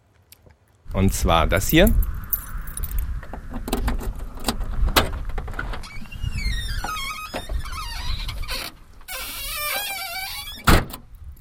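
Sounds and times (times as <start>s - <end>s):
speech: 0.9s - 2.1s
sharp clunks and rattles: 2.9s - 9.1s
car trunk lid creaking open with a metallic squeak: 5.5s - 11.0s.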